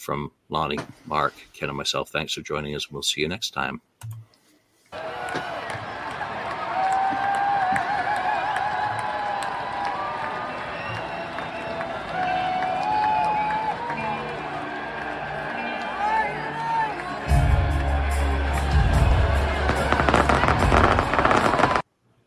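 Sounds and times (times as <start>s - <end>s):
speech: 0.0s - 4.2s
crowd roar at an outdoor amphitheater: 5.0s - 21.8s
fireworks crackling and popping at an outdoor amphitheater: 19.7s - 21.9s.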